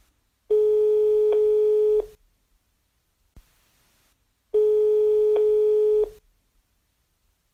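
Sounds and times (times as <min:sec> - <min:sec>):
telephone ringing tone while a call is being dialed: 0:00.5 - 0:02.1, 0:04.6 - 0:06.2.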